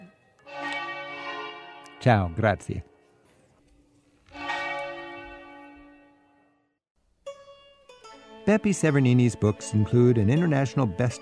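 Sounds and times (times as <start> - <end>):
church bell outside a window tolling: 0.5 - 3.0, 4.4 - 6.4
speech: 2.0 - 2.9, 8.5 - 11.2.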